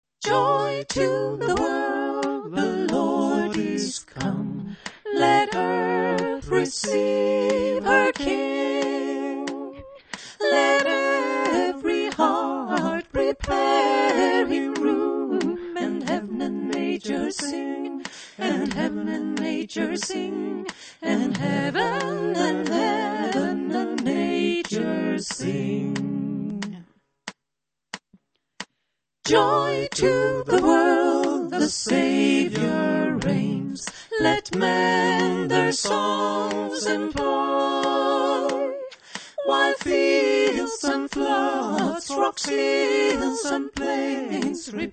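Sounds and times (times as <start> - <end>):
soprano singing: 0.2 - 26.8, 29.3 - 44.9.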